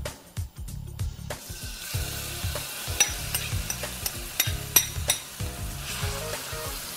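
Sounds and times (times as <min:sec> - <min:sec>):
shrimp sizzling in hot corn oil in a frying pan over raised heat: 0:01.4 - 0:06.9.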